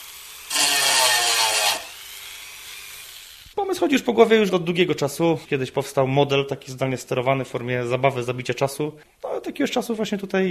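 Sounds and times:
small high-speed dental-style rotary modelling tool grinding against wood: 0.0 - 3.6
speech: 3.7 - 10.4.

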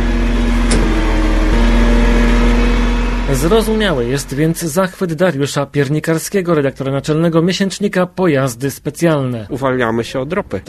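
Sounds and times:
gas-powered vehicle engine idling: 0.0 - 4.9
speech: 3.4 - 10.6.

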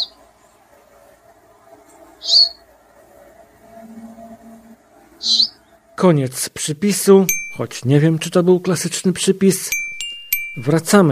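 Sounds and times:
faint low background: 0.0 - 11.1
bird song and begging calls: 2.2 - 2.6, 5.2 - 5.8
speech: 2.2 - 2.6, 6.0 - 9.8, 10.6 - 11.1.

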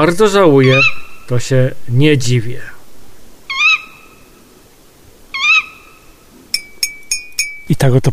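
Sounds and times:
speech: 0.0 - 2.7, 7.7 - 8.1
female tawny owl giving shrill rasping calls: 0.5 - 1.5, 3.4 - 4.6, 5.2 - 6.5.

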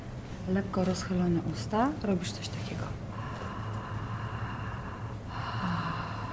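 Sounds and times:
speech: 0.5 - 3.0
Ujjayi yoga throat breath with lips slightly parted: 3.1 - 6.3.

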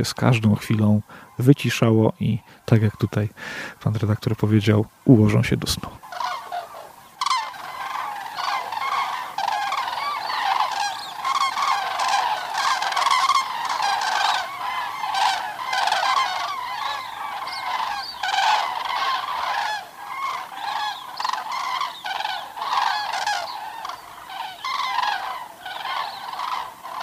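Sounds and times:
speech: 0.0 - 6.3
flock of geese honking on ponds: 4.4 - 27.0.

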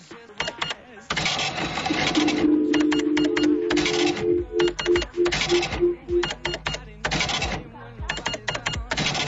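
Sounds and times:
electronic cash register printing a receipt: 0.4 - 9.2
short electronic beeps of a cash register: 1.8 - 6.7.

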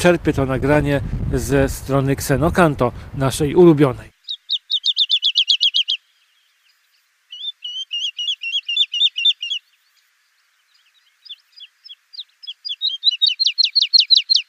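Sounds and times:
speech: 0.0 - 4.1
woodlark song: 3.6 - 14.4.

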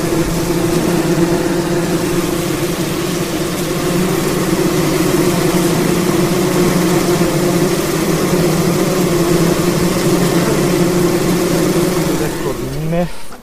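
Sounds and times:
honeybees swarming around an open hive on a hot sunny day: 0.0 - 13.4.

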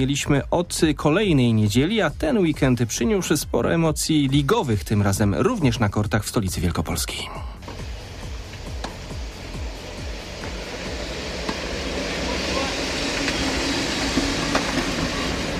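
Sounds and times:
speech: 0.0 - 7.5
train arriving beside outdoor tennis courts: 7.6 - 15.5.

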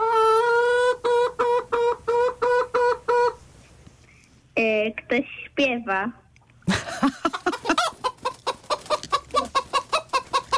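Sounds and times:
chicken clucking: 0.0 - 3.4, 7.1 - 10.5
speech: 5.1 - 6.2
laughter: 6.7 - 8.0.

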